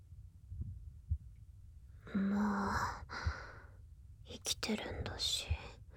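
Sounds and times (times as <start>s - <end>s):
low rumbling background: 0.0s - 5.9s
heartbeat thumping softly: 0.4s - 1.4s, 2.1s - 3.7s, 4.8s - 5.9s
speech: 4.4s - 5.8s.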